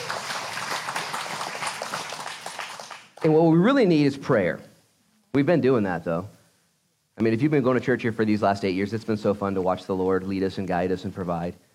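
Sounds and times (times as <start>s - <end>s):
audience applauding: 0.0s - 3.4s
speech: 3.2s - 4.7s, 5.3s - 6.4s, 7.2s - 11.6s.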